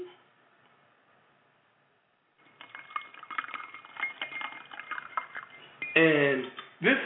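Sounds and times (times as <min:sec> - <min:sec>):
whisky poured over ice into a glass: 0:02.4 - 0:05.8
ice crackling and tinkling in a glass: 0:02.4 - 0:06.8
speech: 0:06.0 - 0:07.0.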